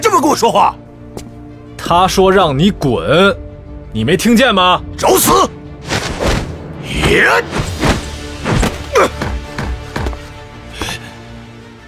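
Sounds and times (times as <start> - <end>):
speech: 0.2 - 0.8, 1.9 - 5.6, 6.9 - 7.6
fist striking an open palm in a fight: 5.9 - 10.3.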